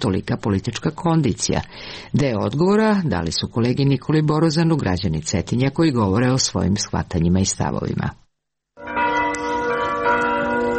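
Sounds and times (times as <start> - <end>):
speech: 0.0 - 8.2
Serbian Orthodox church bells ringing in Cetinje: 8.8 - 10.7.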